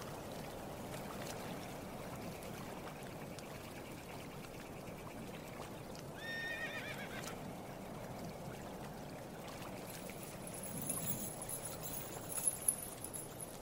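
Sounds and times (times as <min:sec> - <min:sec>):
lake water lapping: 0:00.0 - 0:13.6
horse whinnying: 0:06.2 - 0:07.4.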